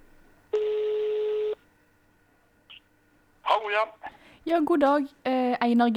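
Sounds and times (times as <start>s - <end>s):
steady electronic telephone tone as a phone call is placed: 0.5s - 1.6s
speech: 3.7s - 5.9s.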